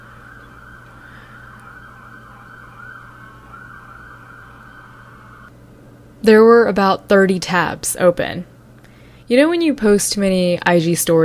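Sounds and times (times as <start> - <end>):
city street traffic in New York City: 0.0 - 5.5
emergency vehicle siren wailing in New York City: 0.0 - 5.5
speech: 6.2 - 8.5, 9.3 - 11.2.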